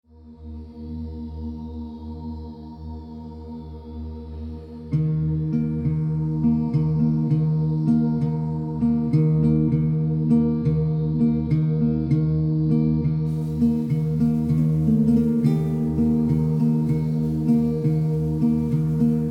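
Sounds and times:
acoustic guitar chill groove: 4.9 - 19.3.

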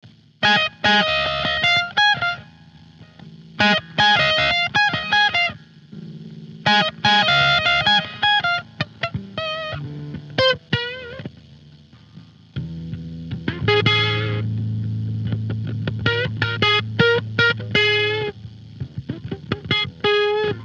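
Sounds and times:
guitar improvisation: 0.4 - 20.6.

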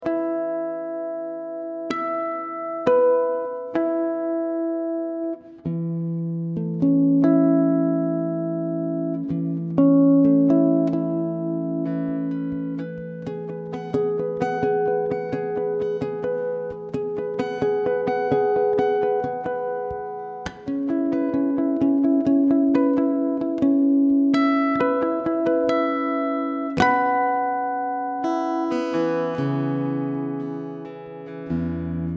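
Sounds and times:
guitar harmonics on E: 0.0 - 32.1.

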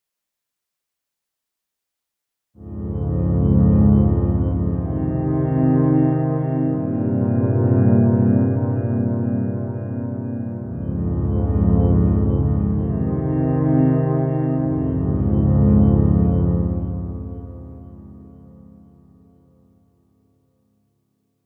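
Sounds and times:
spacey dream atmosphere at 60 bpm: 2.6 - 19.8.

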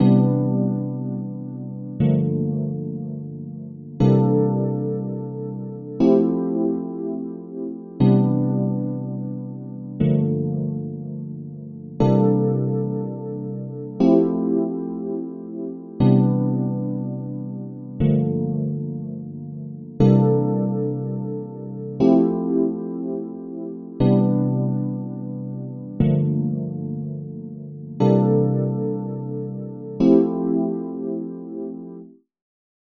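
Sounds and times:
dreamy Rhodes electric piano: 0.0 - 32.1.

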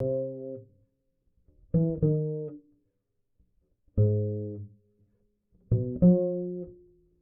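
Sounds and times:
falling acoustic bass verse: 0.0 - 0.7, 1.6 - 2.6, 3.9 - 4.8, 5.7 - 7.0.

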